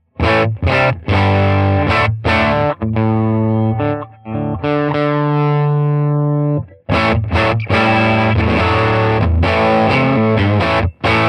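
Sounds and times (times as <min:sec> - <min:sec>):
overdriven tweed-style guitar amp playing crunchy strummed chords: 0:00.0 - 0:11.2.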